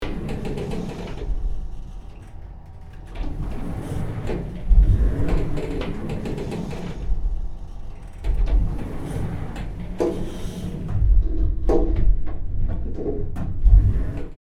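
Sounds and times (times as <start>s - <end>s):
service elevator moving: 0.0s - 14.4s.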